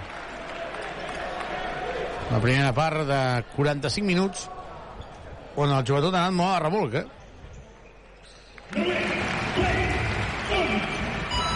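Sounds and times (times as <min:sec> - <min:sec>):
large crowd cheering and applauding at a basketball game: 0:00.0 - 0:02.6, 0:08.6 - 0:11.5
speech: 0:02.3 - 0:04.6, 0:05.6 - 0:07.2.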